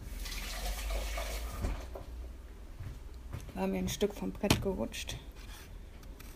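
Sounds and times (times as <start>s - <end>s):
running tap water over a potato: 0.1s - 2.0s
speech: 3.6s - 5.3s.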